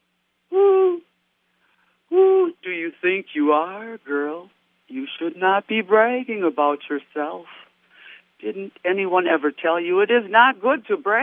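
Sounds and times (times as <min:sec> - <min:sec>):
person imitating an owl hooting: 0:00.5 - 0:01.0, 0:02.1 - 0:02.6
speech: 0:02.8 - 0:07.6, 0:08.4 - 0:11.2.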